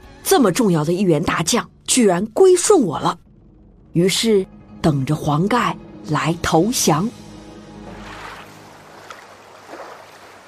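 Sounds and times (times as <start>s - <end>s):
speech: 0.3s - 3.2s, 3.9s - 7.2s
large rough waves on a river: 7.8s - 10.4s.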